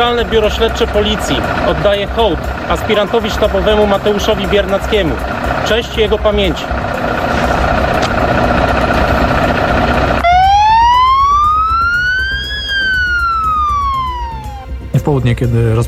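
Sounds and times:
speech: 0.0s - 6.9s, 15.1s - 15.8s
police and fire vehicle sirens sounding in tribute during a police officer's funeral: 7.3s - 14.9s.

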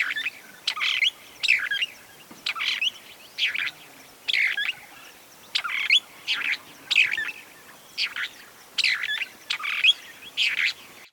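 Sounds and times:
bird singing lively twittering chirping phrases: 0.0s - 11.1s
soft steady hiss: 0.0s - 11.1s.

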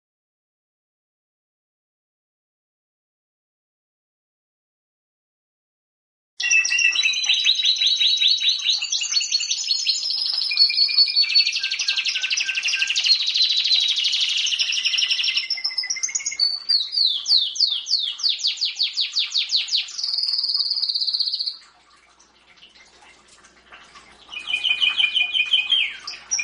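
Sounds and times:
champion domestic canary singing buzzy rolls, sweeps and whistles: 6.4s - 21.6s, 24.3s - 26.4s.

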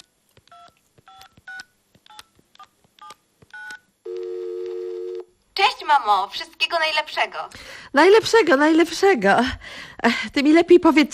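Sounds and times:
touch-tone keypad dialing beeps of a phone number at home: 0.5s - 5.2s
speech: 5.9s - 11.1s.

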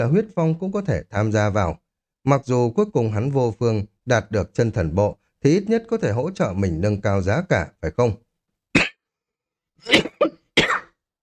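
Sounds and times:
speech: 0.0s - 8.2s, 9.8s - 10.1s
person coughing lightly: 9.8s - 11.0s.

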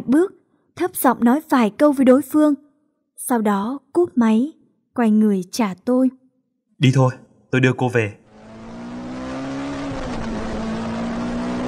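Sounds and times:
speech: 0.0s - 2.6s, 3.2s - 6.2s, 6.8s - 8.2s
car engine droning while driving fast on a main road: 8.2s - 11.6s.

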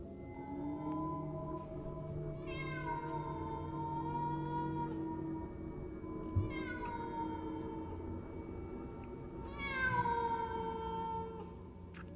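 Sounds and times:
low steady background: 0.0s - 12.1s
cat meowing in a dark garden at night: 2.4s - 4.9s, 6.4s - 7.9s, 9.5s - 11.5s.

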